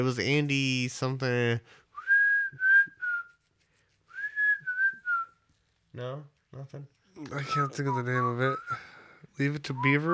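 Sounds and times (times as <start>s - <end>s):
speech: 0.0s - 1.8s, 6.0s - 10.1s
person whistling the jaunty theme tune of an old TV show: 2.0s - 3.4s, 4.1s - 5.4s, 7.4s - 10.1s.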